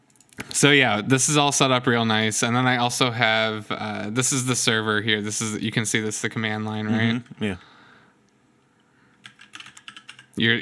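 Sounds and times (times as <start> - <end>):
speech: 0.6 - 7.8, 10.4 - 10.6
keystrokes on a computer keyboard typing a backup command: 9.2 - 10.4.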